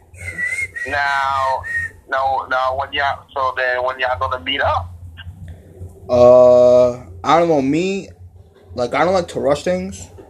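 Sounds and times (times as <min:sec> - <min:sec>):
person whistling a tune: 0:00.2 - 0:02.0
speech: 0:00.9 - 0:04.9, 0:06.1 - 0:08.2, 0:08.8 - 0:10.1.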